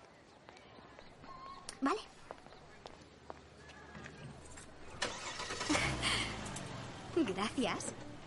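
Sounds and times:
speech: 0:01.8 - 0:02.2, 0:07.2 - 0:08.0
car engine rumbling: 0:04.4 - 0:08.2
car engine starting after its disconnected battery is reconnected: 0:04.8 - 0:08.2
car engine cranking: 0:04.9 - 0:06.8.

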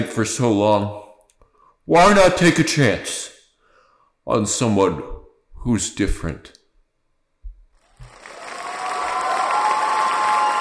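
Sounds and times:
speech: 0:00.0 - 0:01.0, 0:01.9 - 0:03.3, 0:04.2 - 0:06.6
large crowd clapping and cheering: 0:07.8 - 0:10.5.

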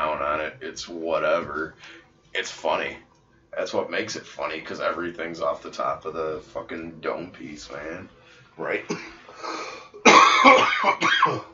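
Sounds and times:
speech: 0:00.5 - 0:09.8, 0:10.4 - 0:11.5
man coughing: 0:08.9 - 0:09.2, 0:10.0 - 0:11.5.

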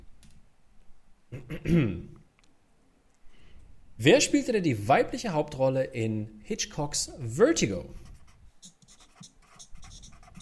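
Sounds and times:
speech: 0:01.4 - 0:02.1, 0:04.0 - 0:08.0
pens scratching and squeaking on paper while writing: 0:08.1 - 0:10.4.

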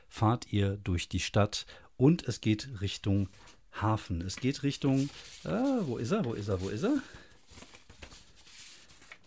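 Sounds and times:
speech: 0:00.2 - 0:07.7
paper sheets being shuffled and flipped: 0:04.2 - 0:09.2.

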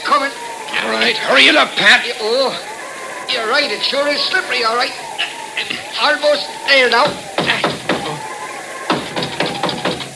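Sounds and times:
laughter: 0:00.0 - 0:10.1
speech: 0:00.2 - 0:02.7, 0:03.3 - 0:07.8
knocking on a wooden door: 0:07.0 - 0:08.2, 0:08.9 - 0:10.1.

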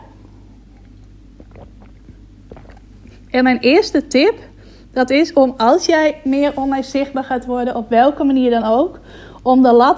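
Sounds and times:
steady low hum: 0:00.0 - 0:09.9
person sipping and gulping water: 0:00.5 - 0:03.4
mouth clicks: 0:00.7 - 0:03.2
speech: 0:03.3 - 0:09.9.

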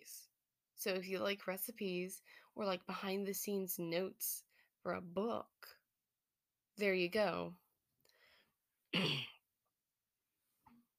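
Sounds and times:
speech: 0:00.8 - 0:05.8, 0:06.8 - 0:07.6, 0:08.9 - 0:09.3
loud harsh cough: 0:08.9 - 0:09.4
quiet brief throat clearing: 0:08.9 - 0:09.4.

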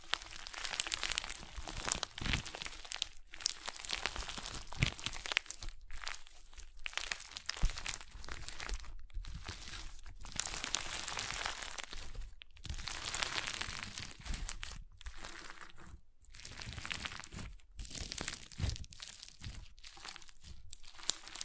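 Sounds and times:
crunchy slime: 0:00.0 - 0:21.4.

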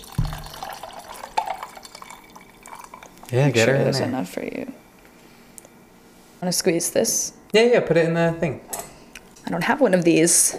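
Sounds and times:
liquid pouring: 0:00.0 - 0:03.4
speech: 0:03.3 - 0:04.8, 0:06.4 - 0:08.7, 0:09.5 - 0:10.5.

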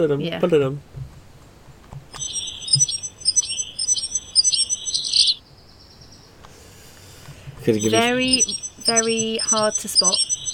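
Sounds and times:
speech: 0:00.0 - 0:01.0, 0:07.7 - 0:10.3
small bird singing a high squeaky repeating phrase: 0:02.2 - 0:06.4, 0:07.7 - 0:10.5.

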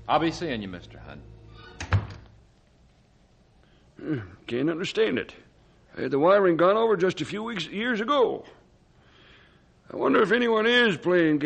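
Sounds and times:
speech: 0:00.1 - 0:02.0, 0:04.0 - 0:08.6, 0:09.9 - 0:11.4
door closing thud: 0:01.8 - 0:02.3.

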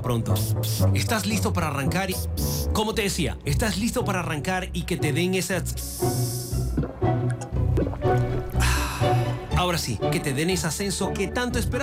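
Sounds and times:
speech: 0:00.0 - 0:06.9, 0:09.6 - 0:11.8
sparkling water pouring: 0:06.6 - 0:08.8.

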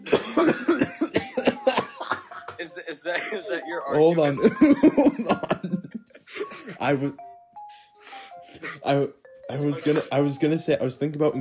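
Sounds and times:
person coughing in a rapid fit: 0:00.0 - 0:02.5, 0:04.4 - 0:06.8, 0:08.6 - 0:08.9
laughter: 0:00.0 - 0:07.0
speech: 0:03.0 - 0:05.6, 0:06.8 - 0:07.3, 0:08.9 - 0:11.4
short gasping breaths: 0:07.6 - 0:08.9.

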